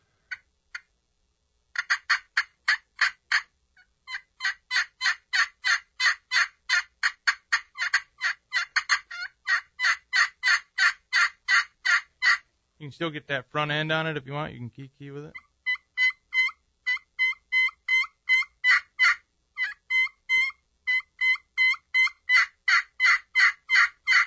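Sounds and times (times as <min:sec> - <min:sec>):
raspy yelping from a hand-operated friction turkey call: 0:01.8 - 0:03.5, 0:04.1 - 0:12.5, 0:15.3 - 0:24.2
speech: 0:12.8 - 0:15.4.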